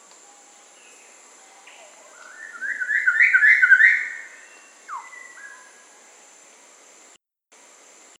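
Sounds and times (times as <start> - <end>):
rusty pitohui whistling in Papua New Guinea: 2.2 - 5.7.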